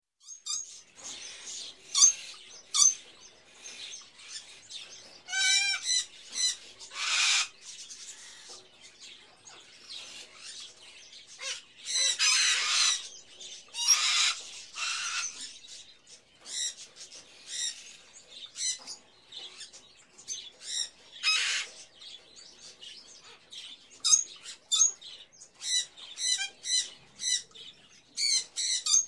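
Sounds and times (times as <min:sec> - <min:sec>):
various birds in a pet shop: 0:00.2 - 0:29.0.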